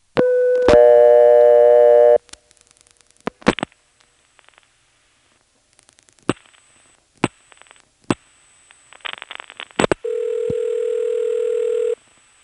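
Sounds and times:
coin payphone line dial tone: 0:00.2 - 0:02.2, 0:10.0 - 0:12.0.

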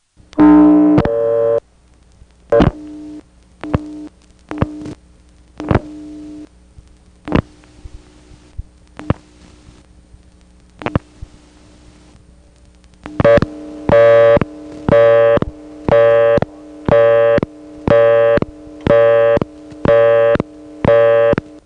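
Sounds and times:
faint hum on a payphone line: 0:00.0 - 0:21.6
clicks on a payphone line: 0:00.3 - 0:03.0, 0:03.6 - 0:05.9, 0:06.8 - 0:11.4, 0:12.1 - 0:21.6
telephone busy signal on a payphone: 0:00.4 - 0:01.6, 0:02.6 - 0:02.8, 0:13.2 - 0:21.5.

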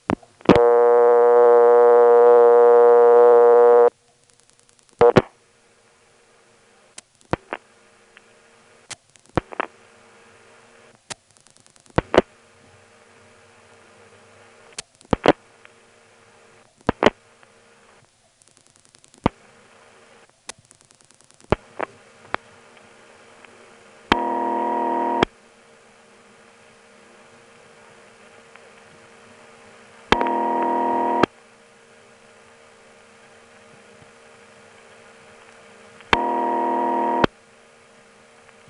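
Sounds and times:
faint hum: 0:00.0 - 0:38.6
buzzy steady telephone tone: 0:00.5 - 0:03.9, 0:24.1 - 0:25.3, 0:30.1 - 0:31.3, 0:36.1 - 0:37.3
telephone dial-pulse clicks: 0:00.5 - 0:03.9, 0:24.1 - 0:25.3, 0:30.1 - 0:31.3, 0:36.0 - 0:37.3.

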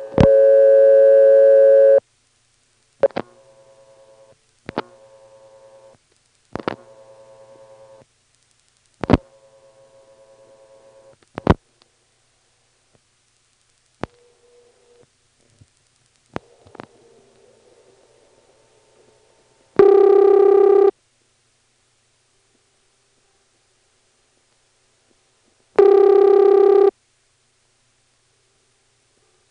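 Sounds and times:
telephone ringback tone of a locally dialed number: 0:00.0 - 0:02.0, 0:19.8 - 0:20.9, 0:25.8 - 0:26.9.

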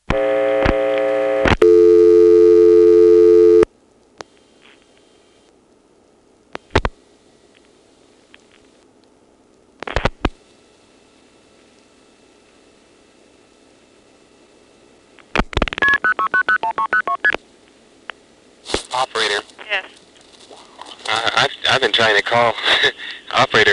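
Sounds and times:
telephone line noise: 0:00.0 - 0:08.9, 0:09.8 - 0:23.7
telephone dial tone: 0:00.1 - 0:03.7.

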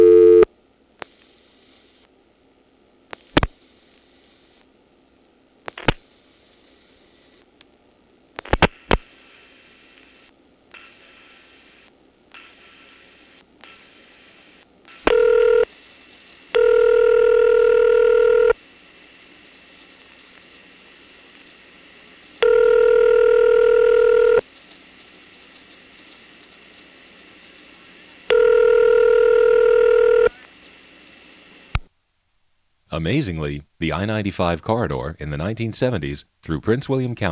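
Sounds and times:
quiet hissy telephone line: 0:00.0 - 0:02.1, 0:08.4 - 0:19.3, 0:20.8 - 0:24.5, 0:25.3 - 0:31.8
electronic switching office ringback tone: 0:15.1 - 0:15.7, 0:16.6 - 0:18.6, 0:22.4 - 0:24.4, 0:28.3 - 0:30.3
speech: 0:33.0 - 0:37.3.

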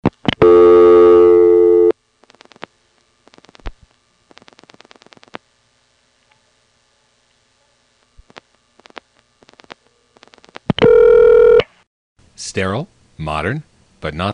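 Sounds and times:
steady buzzing dial tone on an old telephone exchange: 0:00.4 - 0:01.9, 0:10.7 - 0:11.7
speech: 0:12.6 - 0:14.3.

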